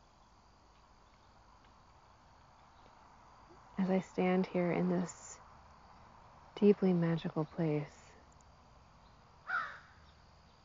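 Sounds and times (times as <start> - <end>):
faint hum: 0.0 - 10.6
speech: 3.8 - 5.2, 6.6 - 8.0
crow cawing as crows gather and fly overhead: 9.4 - 10.0.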